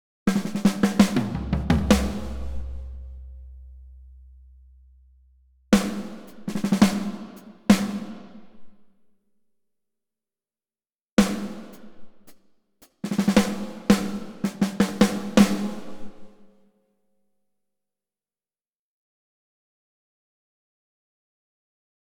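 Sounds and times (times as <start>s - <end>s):
drums recorded in Ukraine: 0.3s - 4.9s, 5.8s - 8.7s, 11.2s - 16.5s.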